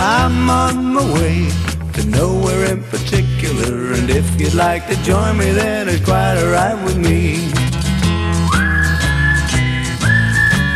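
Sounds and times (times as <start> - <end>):
speech: 0.3 - 7.6
person whistling clear sustained notes: 8.4 - 10.7.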